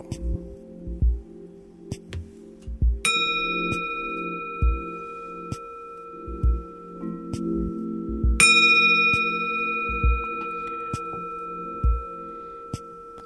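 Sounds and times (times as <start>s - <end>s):
soft low rhythmic thumping: 0.0s - 13.2s
metal bell struck after clay damping removed: 3.0s - 13.2s.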